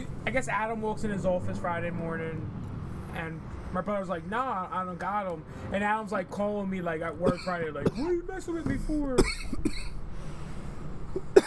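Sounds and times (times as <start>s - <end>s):
speech: 0.3s - 9.8s
sharp coughs: 7.2s - 8.2s, 9.1s - 10.0s, 11.2s - 11.4s.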